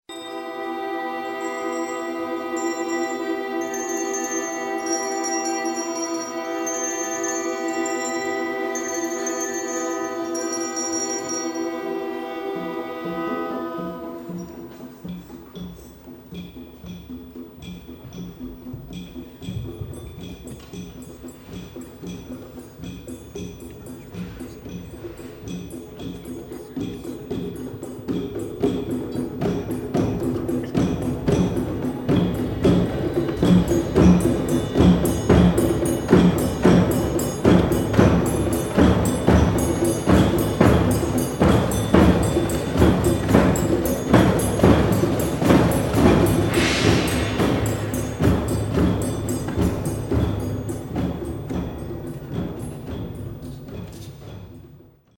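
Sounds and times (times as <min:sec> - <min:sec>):
small bells ringing: 0:00.1 - 0:54.7.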